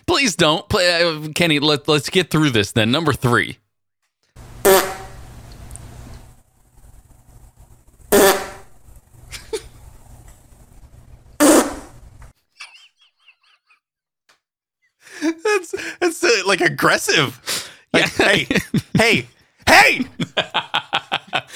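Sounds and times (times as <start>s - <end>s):
speech: 0.2s - 3.6s, 16.9s - 21.5s
dog farting: 8.1s - 8.7s, 11.4s - 12.0s
laughter: 12.5s - 13.8s, 15.1s - 16.6s, 17.9s - 21.5s.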